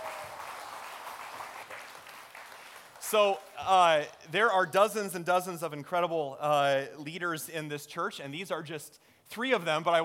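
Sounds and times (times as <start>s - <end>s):
audience clapping steadily: 0.0s - 3.9s
speech: 3.1s - 10.0s.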